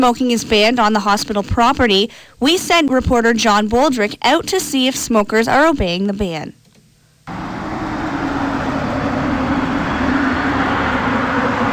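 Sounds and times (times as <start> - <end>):
speech: 0.0 - 6.6
traffic racing past on a street on a cold day: 7.3 - 11.7.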